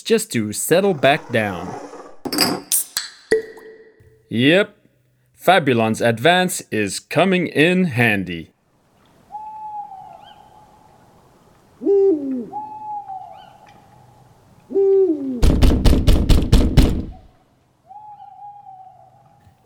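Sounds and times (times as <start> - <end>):
speech: 0.1 - 2.6, 4.3 - 4.8, 5.4 - 8.5
owl hooting at night: 9.3 - 10.8, 11.8 - 13.8, 14.7 - 15.4, 17.9 - 19.3
heavy knocks on a heavy wooden basement trapdoor: 15.5 - 17.2.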